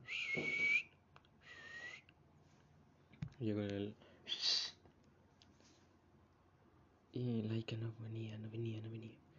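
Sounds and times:
person whistling loudly to call a dog: 0.0s - 2.1s
speech: 3.4s - 4.1s, 7.2s - 9.3s.

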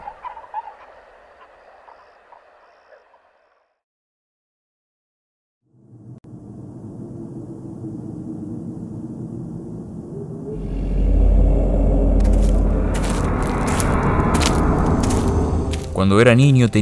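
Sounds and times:
fowl-like birds calling and chattering in a forest at sunrise: 0.0s - 3.6s
steady low rushing noise: 5.8s - 16.4s
speech: 16.0s - 16.8s.

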